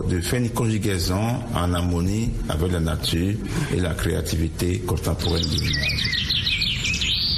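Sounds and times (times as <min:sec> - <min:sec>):
speech: 0:00.0 - 0:06.5
low steady ambient rumble: 0:00.0 - 0:07.3
birds singing in a forest: 0:05.0 - 0:07.3.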